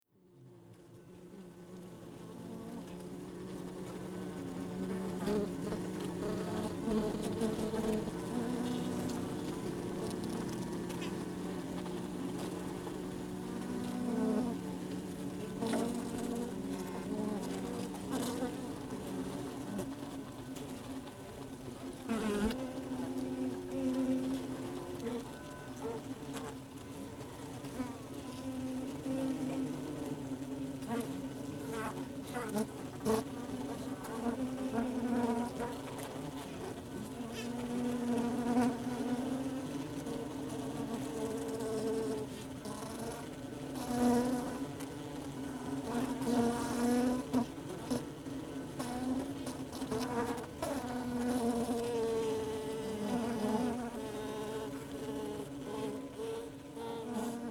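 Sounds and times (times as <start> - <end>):
beehive interior buzzing: 0.2 - 57.5.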